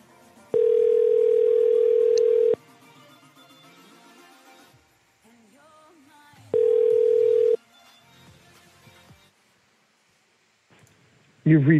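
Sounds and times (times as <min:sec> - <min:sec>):
faint noise: 0:00.4 - 0:02.6, 0:04.7 - 0:11.7
telephone ringback tone over the line: 0:00.5 - 0:02.6, 0:06.6 - 0:07.6.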